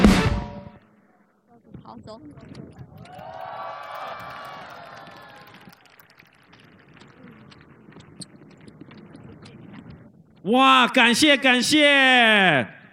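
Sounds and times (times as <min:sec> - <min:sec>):
speech: 0:01.9 - 0:03.4, 0:10.4 - 0:12.8
audience applause: 0:02.9 - 0:07.8
large audience cheering and whooping: 0:03.0 - 0:06.3.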